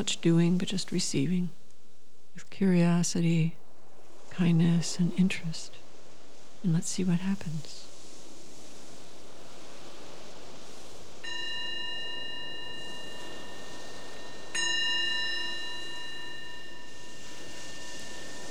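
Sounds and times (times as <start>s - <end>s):
speech: 0.0s - 1.6s, 2.4s - 3.6s, 4.3s - 5.8s, 6.6s - 7.9s
soft hiss: 0.0s - 18.4s
meditation bell ringing during a guided meditation: 11.2s - 18.4s.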